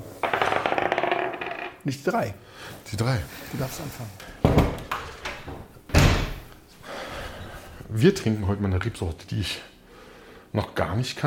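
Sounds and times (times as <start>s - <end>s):
small die clattering across a hard tabletop: 0.2s - 1.8s
speech: 1.9s - 4.3s, 7.9s - 9.7s, 10.5s - 11.2s.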